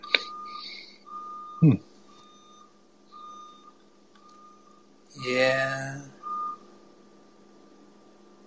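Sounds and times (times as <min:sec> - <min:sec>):
car reversing beeps: 0:00.0 - 0:06.7
noises: 0:00.0 - 0:08.4
voice-like sound: 0:05.2 - 0:06.1.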